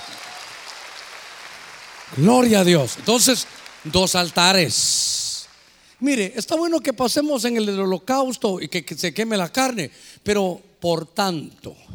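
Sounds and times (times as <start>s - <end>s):
large crowd clapping loudly: 0.0s - 5.9s
speech: 2.1s - 5.2s, 6.0s - 11.9s.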